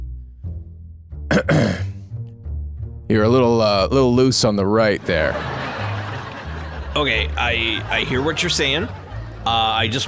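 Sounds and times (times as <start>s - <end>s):
person clearing throat: 1.3s - 2.0s
speech: 1.4s - 1.9s, 3.1s - 5.7s, 7.0s - 10.0s
laughter: 5.0s - 10.0s.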